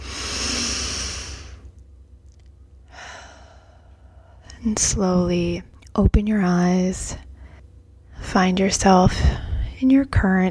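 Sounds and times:
deep breath during a relaxation exercise: 0:00.0 - 0:01.7, 0:02.9 - 0:04.5
speech: 0:04.6 - 0:07.3, 0:08.3 - 0:10.4.

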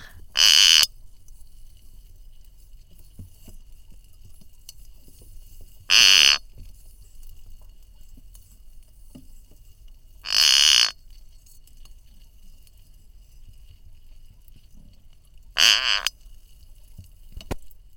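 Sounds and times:
spider crab buzzing bursts underwater: 0:00.0 - 0:00.9, 0:05.9 - 0:06.4, 0:10.3 - 0:10.9, 0:15.6 - 0:16.1.

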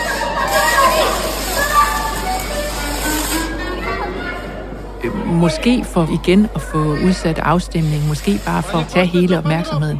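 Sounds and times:
powder fire extinguisher spraying inside a parliament: 0:00.0 - 0:03.6, 0:07.7 - 0:09.1
crowd of voices murmuring and calling out in a parliament: 0:00.0 - 0:09.9
speech: 0:05.3 - 0:09.9.

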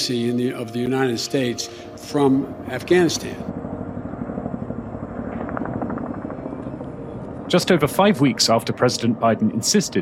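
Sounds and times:
speech: 0:00.0 - 0:03.6, 0:07.5 - 0:10.0
helicopter rotor thudding with engine whine: 0:02.7 - 0:09.2.

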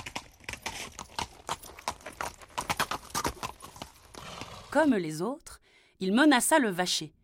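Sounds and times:
horse hooves clip-clopping as a rider arrives: 0:00.0 - 0:04.7
speech: 0:04.7 - 0:07.2.

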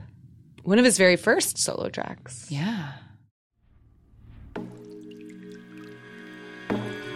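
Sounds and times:
speech: 0:00.6 - 0:03.1
low swelling rumble: 0:03.6 - 0:04.9
water drip sound effects: 0:04.6 - 0:07.1.

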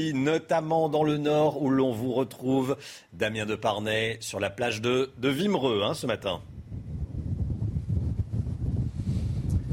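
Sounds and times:
speech: 0:00.0 - 0:06.5
strong wind gusts across a beach buffeting the microphone: 0:06.4 - 0:09.7.

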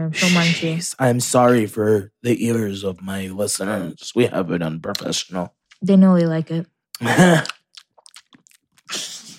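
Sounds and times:
speech: 0:00.0 - 0:07.6
brief vocal sound: 0:00.2 - 0:00.8
crunchy chewing of candy right at the microphone: 0:07.0 - 0:09.2.

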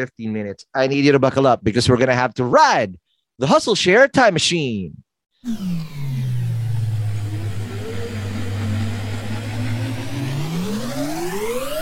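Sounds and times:
speech: 0:00.0 - 0:06.2
car engine whir speeding along the Autobahn: 0:05.4 - 0:11.8.

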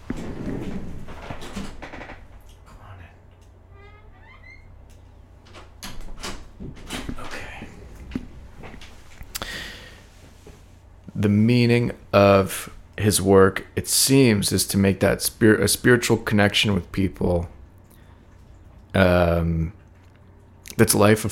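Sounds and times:
door squeaking and creaking: 0:00.0 - 0:07.6
low steady hum: 0:00.0 - 0:21.2
door rattling bumps as it opens: 0:00.1 - 0:02.5, 0:05.4 - 0:07.4
speech: 0:11.2 - 0:17.6, 0:19.0 - 0:19.8, 0:20.8 - 0:21.2.

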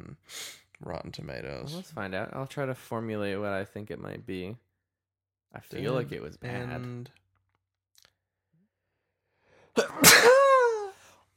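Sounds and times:
speech: 0:00.8 - 0:04.7, 0:05.5 - 0:07.2
person sneezing: 0:09.8 - 0:11.0.

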